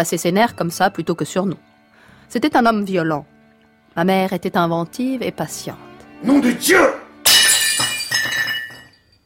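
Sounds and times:
speech: 0.0s - 1.7s, 2.3s - 3.3s, 4.0s - 7.0s
china plate smashing: 7.2s - 9.0s
china plate shards clinking and rattling: 7.3s - 9.2s.

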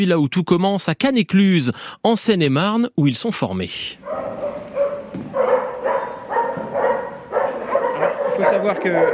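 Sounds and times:
speech: 0.0s - 4.4s, 8.4s - 9.1s
police dogs barking in kennel boxes at a training site in Seine-et-Marne: 4.0s - 9.1s.

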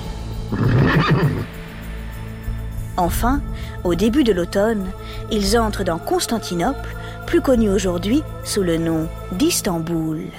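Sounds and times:
horse neighing in sweltering heat: 0.5s - 1.5s
speech: 3.0s - 10.3s.

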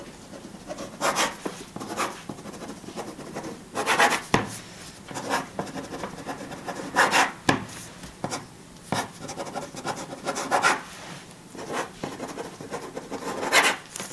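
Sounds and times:
pen scratching on paper as a woman signs: 0.0s - 10.8s, 11.6s - 13.8s.

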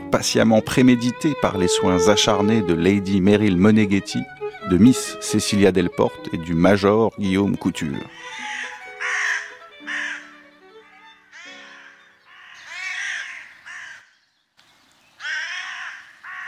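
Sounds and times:
speech: 0.1s - 8.3s
crows cawing: 8.1s - 14.2s, 15.2s - 16.4s.

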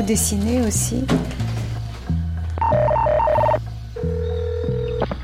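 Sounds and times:
speech: 0.0s - 1.4s
telephone ringing with a warbling trill: 2.6s - 5.0s.

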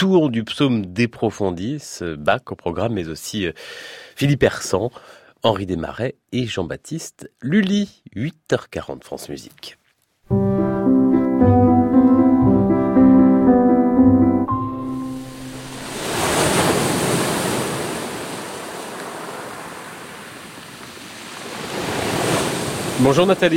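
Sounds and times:
speech: 0.0s - 10.4s, 23.0s - 23.5s
tonal music: 10.3s - 16.0s
sea waves roaring along a coast: 14.9s - 23.5s
wind along a coast: 15.6s - 23.5s.

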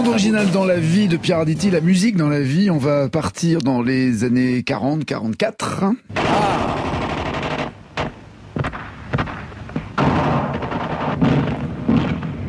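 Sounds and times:
speech: 0.0s - 6.6s
German machine-gun fire: 6.2s - 12.4s.

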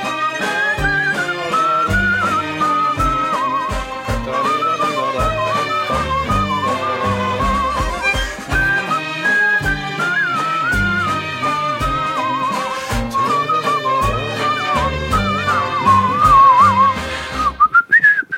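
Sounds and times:
bouncy instrumental accompaniment with steady bass and chords: 0.0s - 17.9s
person whistling a lively wavering melody: 0.0s - 18.3s.

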